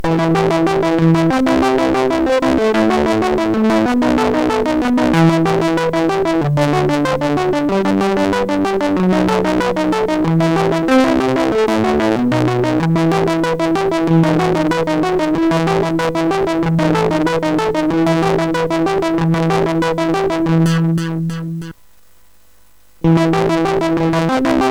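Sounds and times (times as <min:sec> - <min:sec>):
instrumental music on a SID MOS6581R4 sound chip: 0:00.0 - 0:21.8, 0:23.0 - 0:24.7.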